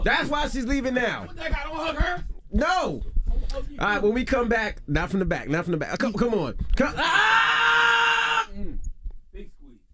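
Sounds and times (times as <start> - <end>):
speech: 0.0 - 7.6
shrill scream: 7.0 - 8.6.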